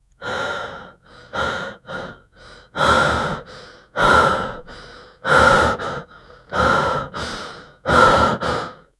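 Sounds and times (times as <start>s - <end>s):
person breathing audibly: 0.2s - 8.9s.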